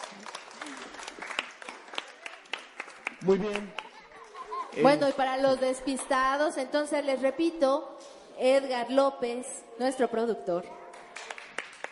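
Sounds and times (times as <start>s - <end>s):
audience applauding: 0.0s - 4.6s, 10.9s - 11.9s
speech: 3.2s - 3.8s, 4.7s - 10.8s
laughter: 3.4s - 5.2s.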